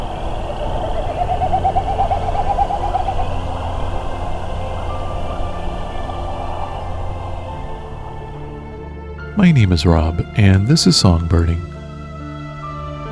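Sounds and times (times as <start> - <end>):
Wilson's snipe winnowing display hooting notes: 0.0 - 8.8
steady low rumble: 0.0 - 11.9
speech: 9.4 - 11.7.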